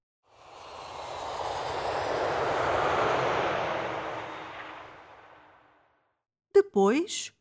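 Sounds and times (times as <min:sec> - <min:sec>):
airplane passing overhead landing on Faial Island in the Azores: 0:00.3 - 0:05.7
speech: 0:06.8 - 0:07.3.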